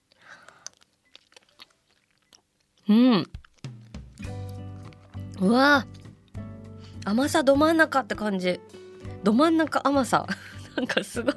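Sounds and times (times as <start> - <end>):
sticky mouth clicks: 0.0 - 6.4
wet chewing of a caramel-flavoured sweet: 0.0 - 7.1
speech: 2.9 - 3.4, 5.4 - 6.0, 7.1 - 11.3.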